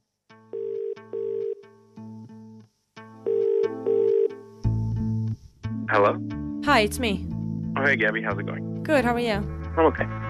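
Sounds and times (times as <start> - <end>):
electronic phone ringback melody on an outgoing call: 0.5 - 1.6, 3.2 - 4.5
speech: 5.9 - 10.2.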